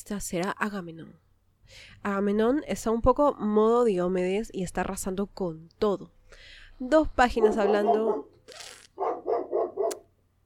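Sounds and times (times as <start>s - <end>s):
speech: 0.0s - 9.2s
pet dog barking: 7.4s - 8.4s, 9.0s - 10.1s.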